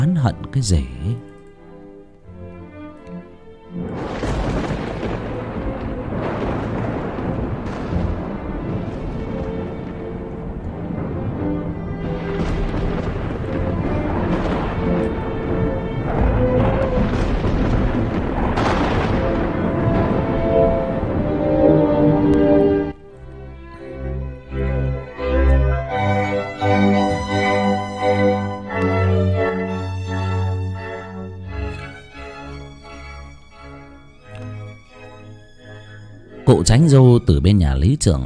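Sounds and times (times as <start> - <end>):
speech: 0.2 - 1.3, 36.7 - 38.2
rolling dry thunder on a hot day: 3.8 - 23.0, 24.1 - 32.6.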